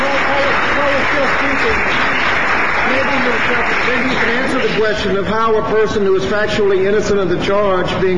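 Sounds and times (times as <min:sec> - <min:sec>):
large crowd applauding loudly: 0:00.0 - 0:05.2
speech: 0:03.9 - 0:08.1.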